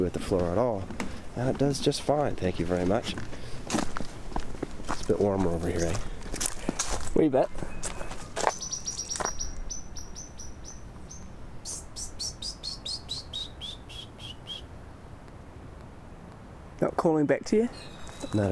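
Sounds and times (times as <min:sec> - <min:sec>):
speech: 0:00.0 - 0:03.8, 0:05.1 - 0:06.4, 0:07.2 - 0:07.6, 0:17.0 - 0:18.4
soft outdoor hiss: 0:00.0 - 0:05.1, 0:07.9 - 0:18.4
European blackbird singing: 0:05.6 - 0:06.1, 0:07.4 - 0:14.7, 0:17.2 - 0:18.4.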